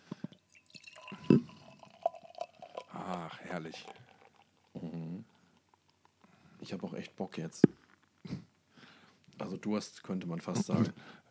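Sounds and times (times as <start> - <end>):
drink pouring into a glass from an opened bottle: 0.3 - 6.9
speech: 3.3 - 4.0, 6.7 - 8.4, 9.4 - 11.2.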